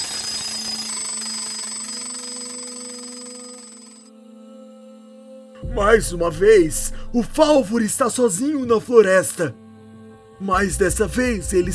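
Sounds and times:
alarm clock ringing in a pocket: 0.0 - 4.1
speech: 5.6 - 9.6, 10.4 - 11.7.

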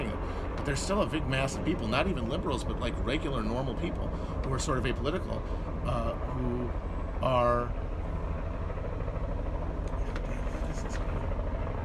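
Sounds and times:
helicopter droning overhead: 0.0 - 11.8
speech: 0.7 - 7.8
faint voices murmuring: 9.9 - 11.3.

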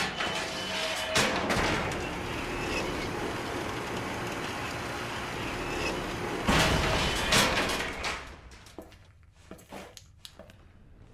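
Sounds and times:
elevator motor humming: 0.1 - 8.6
loud harsh grinding whir: 1.6 - 7.3.

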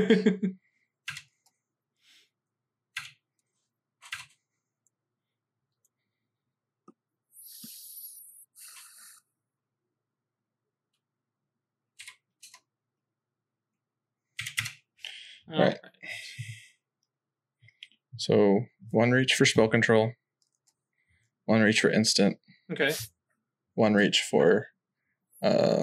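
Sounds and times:
speech: 0.0 - 0.6, 15.5 - 15.9, 18.2 - 20.2, 21.5 - 23.1, 23.8 - 24.7, 25.4 - 25.8
computer keyboard clicking from typing: 1.0 - 1.3, 3.0 - 3.2, 4.0 - 4.4, 12.0 - 12.6, 14.4 - 14.8.

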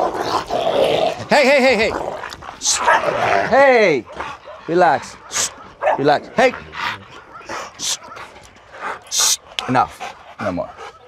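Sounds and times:
dogs fighting at a dog psychology center: 0.0 - 11.0
man calling out sharply: 1.3 - 2.0, 2.6 - 6.8
speech: 1.3 - 2.0, 2.6 - 6.8, 9.7 - 10.8
dogs barking: 2.3 - 11.0.

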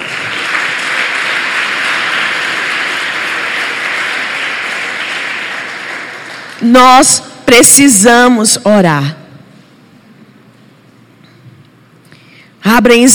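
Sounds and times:
large crowd applauding: 0.0 - 6.7
speech: 6.6 - 9.2, 12.8 - 13.1.

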